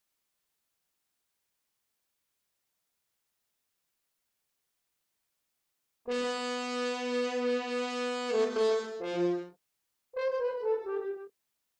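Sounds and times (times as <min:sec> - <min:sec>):
horn: 0:06.1 - 0:09.6, 0:10.2 - 0:11.3.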